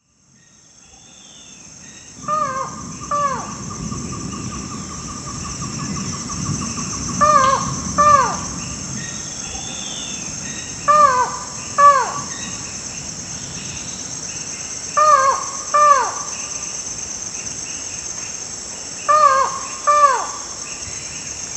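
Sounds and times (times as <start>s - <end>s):
Buckley's forest falcon calling: 2.2s - 4.3s, 6.8s - 12.7s, 15.0s - 16.5s, 19.1s - 20.5s.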